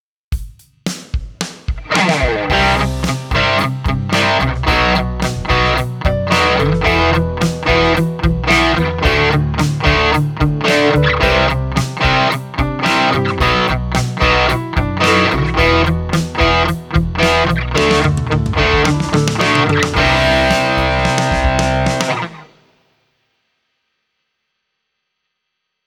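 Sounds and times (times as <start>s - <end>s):
chorus effect on a guitar effects unit: 1.9s - 22.6s.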